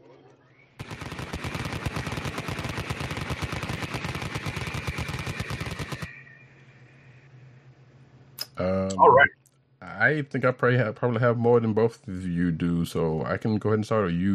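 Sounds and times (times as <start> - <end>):
Vulcan rotary cannon firing rapidly: 0.8 - 6.1
faint hum: 4.6 - 14.3
speech: 8.6 - 9.4, 10.0 - 14.3.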